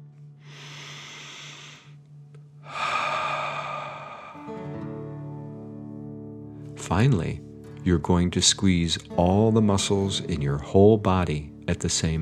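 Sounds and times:
faint steady hum: 0.0s - 4.4s
slow breathing during a guided relaxation exercise: 0.4s - 2.0s, 2.6s - 4.9s
speech: 6.9s - 12.1s.

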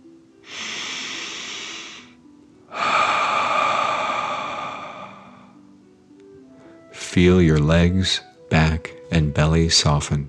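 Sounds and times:
deep breath in: 0.5s - 5.7s
speech: 7.1s - 10.2s.

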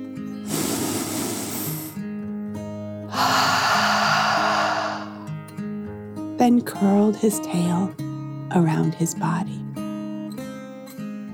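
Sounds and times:
dragon taking a deep breath in and out: 0.4s - 2.0s, 3.1s - 5.4s
speech: 6.4s - 9.7s.

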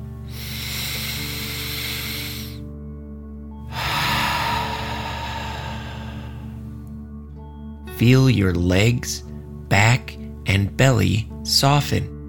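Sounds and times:
deep breath in and out through the mouth: 0.0s - 2.8s, 3.5s - 7.0s
speech: 8.0s - 12.1s.

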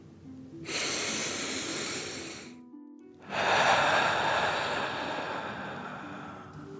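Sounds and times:
deep airy inhale through the nose: 0.7s - 2.6s, 3.3s - 6.7s
rushing exhale through the mouth: 0.7s - 2.6s, 3.3s - 6.7s.

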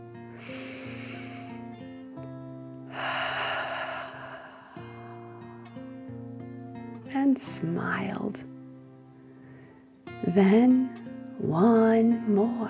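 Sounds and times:
quiet steady sustained music: 0.0s - 12.6s
slow deep breath in and out: 0.3s - 2.0s, 2.9s - 5.4s
speech: 7.2s - 8.5s, 10.3s - 12.6s.

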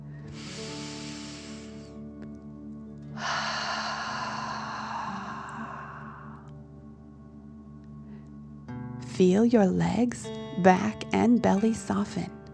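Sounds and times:
long airy inhale through the nose: 0.1s - 2.0s, 3.2s - 6.5s
stronger louder breathy exhale: 0.3s - 2.0s, 3.2s - 6.5s
speech: 9.2s - 12.4s.

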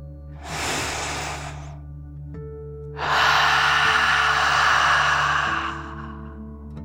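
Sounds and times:
breathy exhale through the mouth: 0.4s - 1.8s, 3.0s - 6.6s
inhale through the nose: 0.4s - 1.8s, 3.0s - 6.4s.

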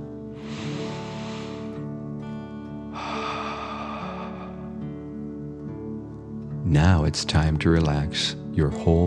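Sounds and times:
soft steady musical tone: 0.0s - 9.0s
deep dragon breaths in and out during a children's relaxation exercise: 0.3s - 2.0s, 2.9s - 5.2s
speech: 6.7s - 9.0s.

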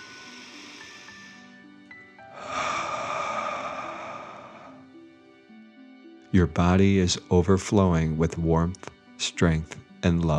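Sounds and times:
deep breath in through the nose and out through the mouth: 0.0s - 1.6s, 2.2s - 5.0s
speech: 6.3s - 10.3s.

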